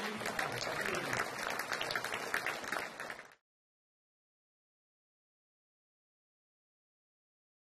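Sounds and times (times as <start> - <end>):
audience applause after a stage performance: 0.0 - 3.4.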